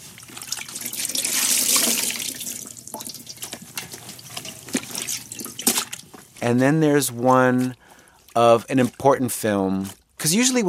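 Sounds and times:
water trickling and dripping: 0:00.0 - 0:06.0
water sloshing as clothes are washed by hand in a wash bowl: 0:00.0 - 0:06.5, 0:07.2 - 0:10.5
speech: 0:06.4 - 0:07.8, 0:08.4 - 0:10.6.

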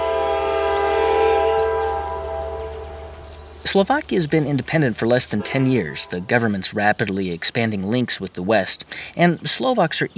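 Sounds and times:
loud sustained train horn blast: 0:00.0 - 0:03.2, 0:05.4 - 0:06.4
train rumbling along the tracks: 0:00.0 - 0:03.8
speech: 0:03.7 - 0:10.1.

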